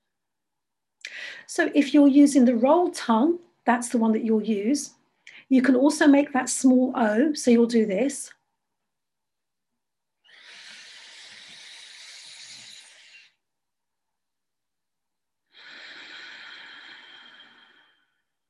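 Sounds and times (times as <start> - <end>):
speech: 1.5 - 8.4
exhaling through the nose in a breathing exercise: 10.2 - 13.4, 15.5 - 18.3.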